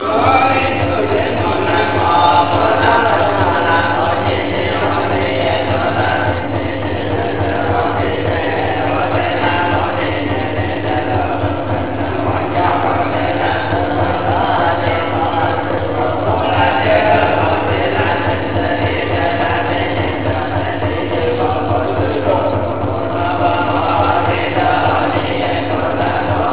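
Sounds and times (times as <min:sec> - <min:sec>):
monk chanting: 0:00.0 - 0:26.5.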